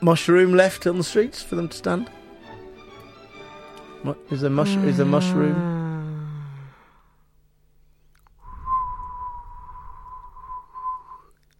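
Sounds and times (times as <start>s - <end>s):
speech: 0.0s - 2.2s, 4.0s - 5.7s
person whistling one long steady breathy note as a tumbleweed-style joke: 8.4s - 11.4s.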